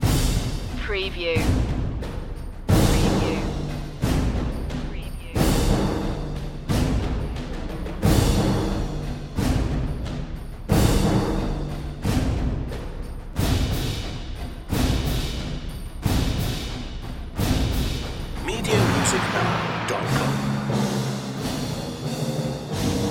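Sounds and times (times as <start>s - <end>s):
percussion mix: 0.0s - 23.0s.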